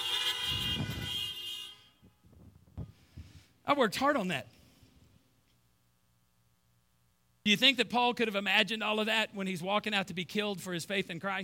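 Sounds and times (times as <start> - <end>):
car horns honking: 0.0 - 2.2
speech: 3.7 - 4.6, 7.4 - 11.4.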